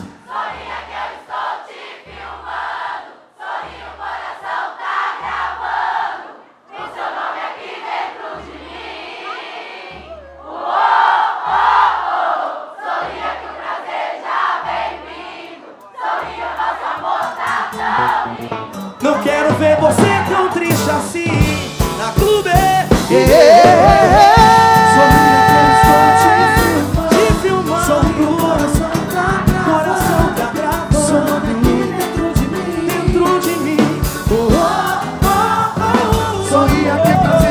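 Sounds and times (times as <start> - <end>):
large crowd singing together like a live concert audience: 0.0 - 37.5
steady thumping low beat: 19.2 - 37.5.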